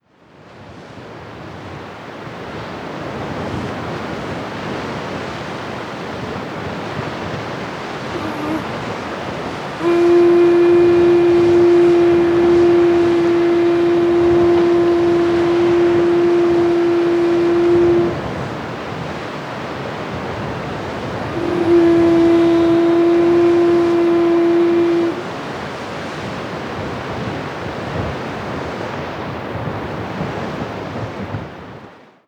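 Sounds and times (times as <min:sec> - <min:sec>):
seashell horn: 0:08.1 - 0:18.7, 0:20.8 - 0:25.9.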